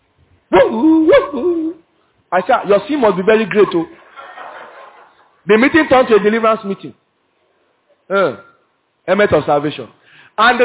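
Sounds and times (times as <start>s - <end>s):
person imitating a dog barking during prayer at a church deliverance meeting: 0.5s - 1.8s
speech: 0.7s - 4.0s, 5.5s - 7.0s, 8.1s - 10.6s
laughter: 3.5s - 6.6s.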